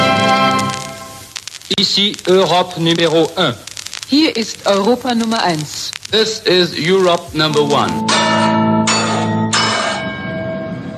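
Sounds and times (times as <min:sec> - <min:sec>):
speech: 0:01.7 - 0:08.5
bright electronic carillon chime of a radio station hourly signal: 0:08.0 - 0:10.9.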